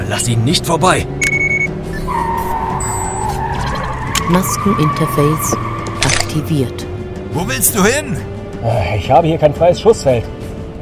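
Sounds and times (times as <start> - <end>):
loud steady car engine roar in a car chase: 0.0 - 10.7
speech: 0.1 - 1.3, 4.3 - 5.7, 6.3 - 10.4
car tires skidding and squealing in a car chase: 1.8 - 6.7.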